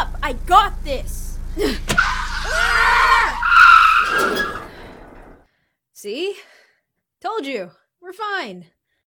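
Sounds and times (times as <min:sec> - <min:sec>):
speech: 0:00.2 - 0:02.7, 0:06.0 - 0:06.6, 0:07.2 - 0:08.8
car tires skidding under hard braking before tire spikes: 0:01.8 - 0:05.4.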